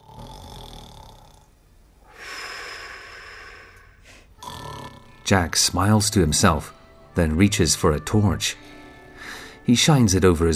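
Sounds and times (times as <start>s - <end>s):
grandfather snoring loudly in bed: 0.0s - 5.2s
speech: 5.3s - 8.7s, 9.6s - 10.5s.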